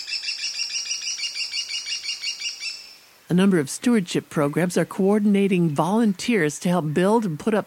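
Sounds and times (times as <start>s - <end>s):
American kestrel calling klee-klee-klee: 0.0s - 3.0s
speech: 3.3s - 7.6s.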